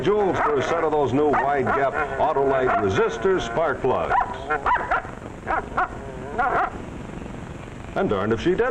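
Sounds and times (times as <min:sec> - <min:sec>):
speech: 0:00.0 - 0:04.9, 0:08.0 - 0:08.6
dog barking: 0:00.4 - 0:00.7, 0:01.3 - 0:01.8, 0:02.7 - 0:03.0, 0:04.1 - 0:06.8.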